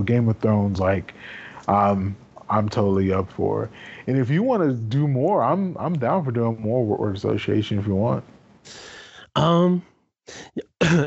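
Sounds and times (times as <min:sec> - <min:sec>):
speech: 0:00.0 - 0:11.0
person clearing throat: 0:10.3 - 0:11.0
person coughing: 0:10.3 - 0:11.0.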